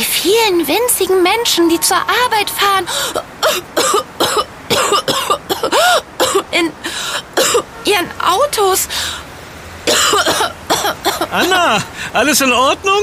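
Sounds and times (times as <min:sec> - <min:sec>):
speech: 0:00.2 - 0:04.1, 0:08.0 - 0:09.2, 0:09.9 - 0:13.0
person coughing and clearing throat: 0:03.0 - 0:06.5, 0:09.9 - 0:11.6.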